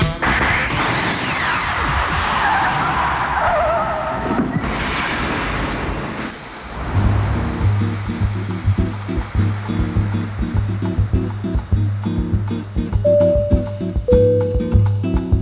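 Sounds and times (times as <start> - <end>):
car tires skidding as a time-travel effect: 0.2 - 7.9
bright high burst of a time-travel effect: 6.3 - 15.3
short musical opening: 13.0 - 15.2.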